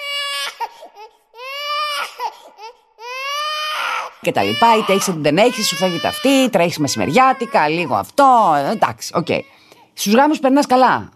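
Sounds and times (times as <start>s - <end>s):
infant wailing: 0.0s - 9.5s
speech: 0.8s - 2.9s, 4.2s - 11.1s.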